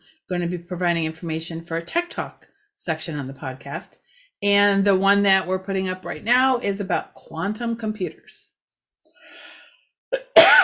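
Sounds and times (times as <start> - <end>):
speech: 0.3 - 8.5
person coughing from a tickle in the throat: 10.2 - 10.6.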